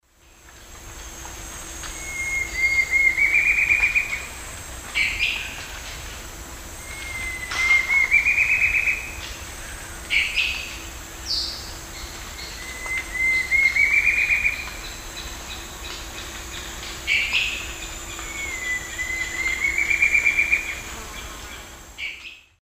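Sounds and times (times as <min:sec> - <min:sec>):
Campylorhamphus procurvoides song in South American eastern lowlands: 0:01.9 - 0:04.3, 0:06.8 - 0:22.6.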